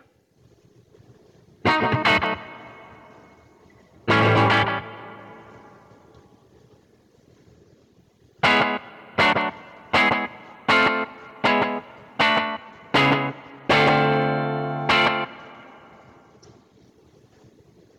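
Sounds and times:
electric guitar through slapback delay and long reverb pedal: 0:01.7 - 0:06.2, 0:08.4 - 0:16.4.

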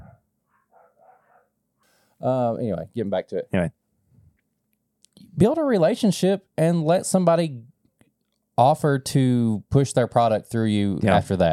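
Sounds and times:
dogs barking excitedly: 0:00.0 - 0:01.6
speech: 0:02.2 - 0:03.8, 0:05.4 - 0:07.7, 0:08.6 - 0:11.5.

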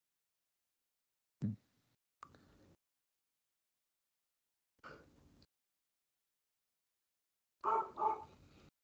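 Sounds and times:
dog barking excitedly: 0:07.6 - 0:08.4.

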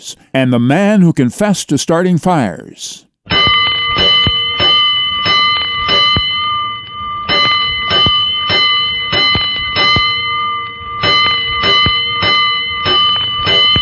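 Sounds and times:
speech: 0:00.0 - 0:03.4
fire station alarm bell ringing: 0:03.3 - 0:13.8.

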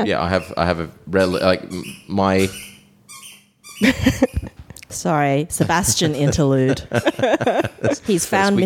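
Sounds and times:
speech: 0:00.0 - 0:02.7, 0:03.8 - 0:08.6
squeaky toy being squeezed: 0:00.2 - 0:04.5
laughter: 0:03.8 - 0:04.8, 0:05.5 - 0:08.6.

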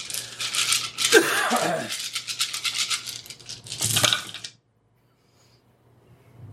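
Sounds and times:
large handful of dice being shaken and rolled: 0:00.0 - 0:04.6.

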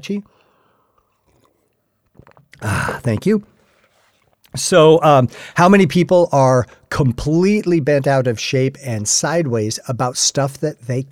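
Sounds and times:
speech: 0:00.0 - 0:00.4, 0:02.6 - 0:03.5, 0:04.6 - 0:11.0
person sipping tea: 0:00.3 - 0:04.6
gulping: 0:01.0 - 0:04.6.

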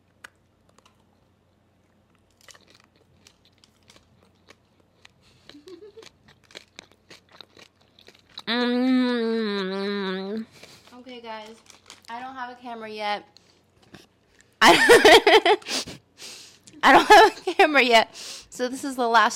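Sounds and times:
biting and chewing a crunchy treat: 0:00.0 - 0:12.4
speech: 0:12.6 - 0:13.4, 0:15.2 - 0:15.8, 0:16.8 - 0:19.3.

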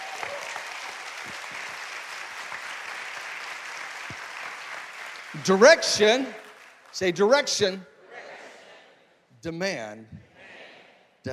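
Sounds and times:
audience clapping in praise: 0:00.0 - 0:07.7
speech: 0:05.4 - 0:07.9, 0:09.4 - 0:10.2.

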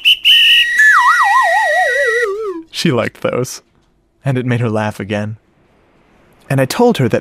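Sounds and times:
whistle blowing: 0:00.0 - 0:02.7
speech: 0:02.8 - 0:05.4, 0:06.5 - 0:07.1.

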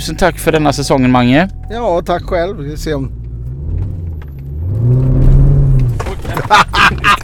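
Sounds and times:
speech: 0:00.0 - 0:03.2, 0:06.5 - 0:07.2
old V8 car engine cranking, catching and idling: 0:00.0 - 0:07.2
people laughing: 0:06.1 - 0:07.2.

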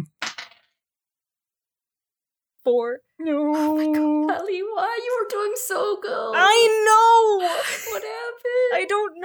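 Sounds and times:
dice tumbling across a hard table: 0:00.2 - 0:00.8
speech: 0:02.6 - 0:09.2
laughter: 0:06.5 - 0:09.1.

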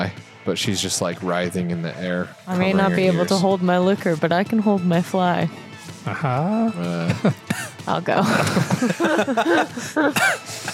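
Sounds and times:
speech: 0:00.4 - 0:10.7
laughter: 0:02.7 - 0:03.6, 0:06.1 - 0:10.7
person coughing: 0:07.5 - 0:07.8, 0:10.1 - 0:10.7.

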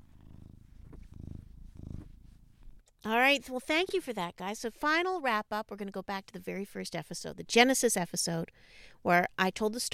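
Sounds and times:
male cat purring: 0:00.0 - 0:02.8
speech: 0:03.0 - 0:09.9.

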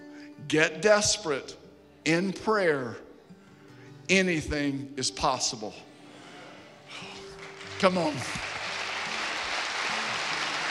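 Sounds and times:
speech: 0:00.5 - 0:03.0, 0:04.1 - 0:05.9, 0:07.8 - 0:08.5
audience clapping: 0:07.2 - 0:10.6.

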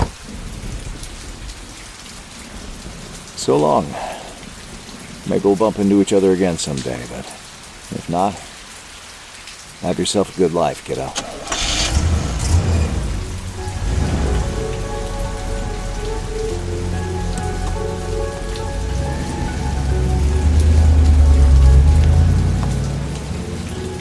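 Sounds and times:
rain pattering on a hard surface at night: 0:00.0 - 0:23.9
speech: 0:03.4 - 0:04.1, 0:05.3 - 0:08.5, 0:09.8 - 0:11.3
car engine idling and pulling away: 0:11.2 - 0:23.9.

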